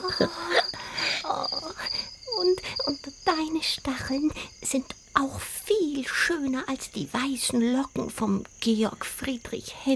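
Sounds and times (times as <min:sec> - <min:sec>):
speech: 0:00.0 - 0:00.5, 0:03.6 - 0:05.5, 0:06.1 - 0:09.9
cricket chirping in a high-pitched trill: 0:00.0 - 0:09.9.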